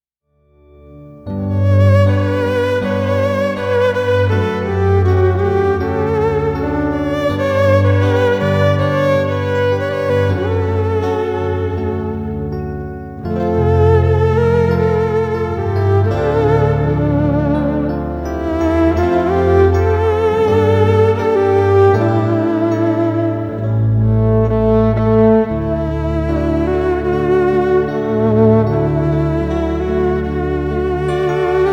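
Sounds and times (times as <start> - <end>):
keyboard: 0.5 - 31.7
violin: 0.8 - 31.7.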